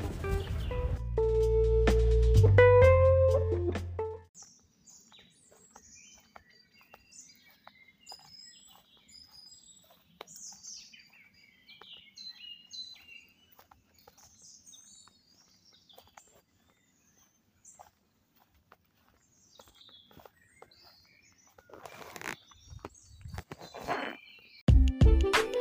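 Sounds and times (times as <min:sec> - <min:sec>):
music: 0:00.0 - 0:04.3, 0:24.7 - 0:25.5
birds calling: 0:04.4 - 0:24.7
blackbird singing in Bucks: 0:04.4 - 0:24.7.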